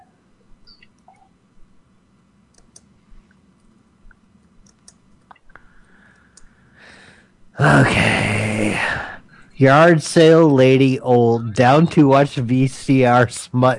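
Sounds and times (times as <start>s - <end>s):
faint typing on a keyboard: 2.5s - 2.9s
speech: 7.6s - 8.2s, 9.6s - 13.7s.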